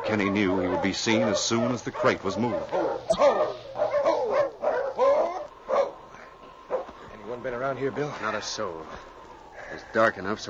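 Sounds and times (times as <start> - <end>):
big fighting dog barking inside a crate: 0.0 - 6.0, 6.7 - 6.9
speech: 0.1 - 3.6, 7.4 - 10.4.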